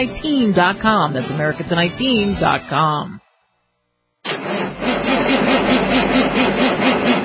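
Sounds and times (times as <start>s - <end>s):
speech: 0.0s - 3.2s
diesel engine starting and running: 4.3s - 7.2s.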